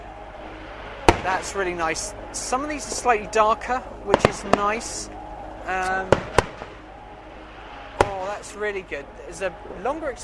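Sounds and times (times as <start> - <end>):
fireworks exploding at a display: 0.7 - 3.4, 4.1 - 5.0, 6.1 - 6.8, 7.9 - 8.6
speech: 1.2 - 6.4, 8.4 - 10.2.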